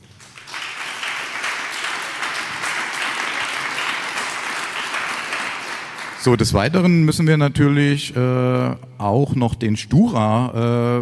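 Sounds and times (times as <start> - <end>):
audience applause: 0.0 - 6.5
speech: 6.2 - 11.0.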